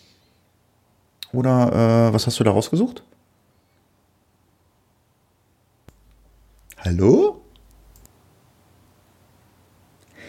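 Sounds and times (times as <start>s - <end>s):
low hum: 0.0s - 10.2s
speech: 1.3s - 3.2s, 6.9s - 7.4s
quiet computer clicks: 7.5s - 8.2s.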